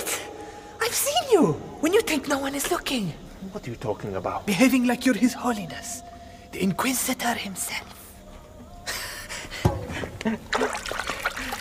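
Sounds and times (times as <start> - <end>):
speech: 0.9 - 8.0, 10.2 - 11.1
water splashing and trickling: 9.6 - 11.5.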